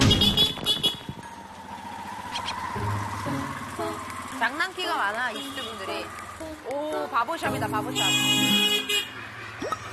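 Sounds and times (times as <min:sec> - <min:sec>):
car horns honking in a busy residential side street in Cairo Egypt: 0:00.0 - 0:01.1, 0:05.3 - 0:06.1, 0:07.4 - 0:09.2
motorbike buzzing: 0:00.0 - 0:06.4
steady rumble of engines and passing traffic: 0:00.0 - 0:09.9
speech: 0:05.0 - 0:09.7.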